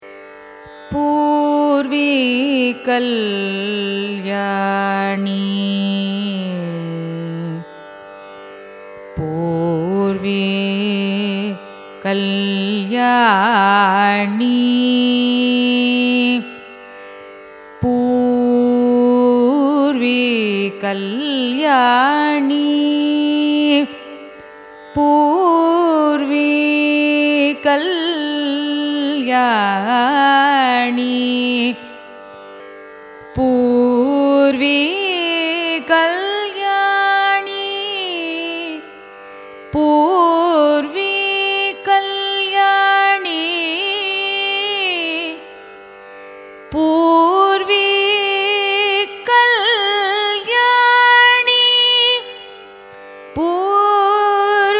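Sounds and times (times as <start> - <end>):
carnatic music in a raga: 0.0 - 54.7.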